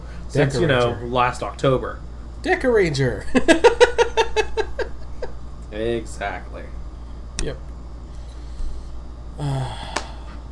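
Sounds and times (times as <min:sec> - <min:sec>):
quiet room hum: 0:00.0 - 0:10.5
speech: 0:00.3 - 0:04.8, 0:05.7 - 0:06.8, 0:07.4 - 0:07.7, 0:09.4 - 0:09.9
laughter: 0:03.3 - 0:05.4
person yawning with a voiced falling tone: 0:09.4 - 0:10.4.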